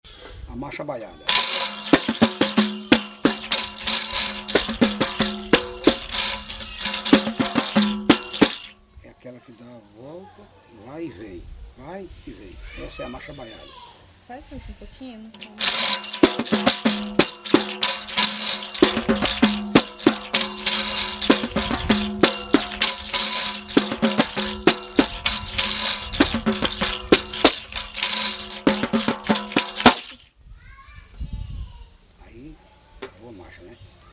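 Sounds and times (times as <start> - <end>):
marcha baiada march music: 1.3 - 8.8, 15.4 - 30.2.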